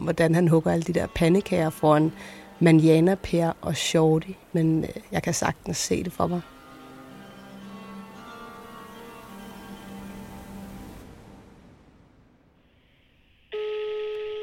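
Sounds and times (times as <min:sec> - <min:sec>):
speech: 0:00.0 - 0:06.6
steady humming telephone line tone: 0:13.5 - 0:14.4.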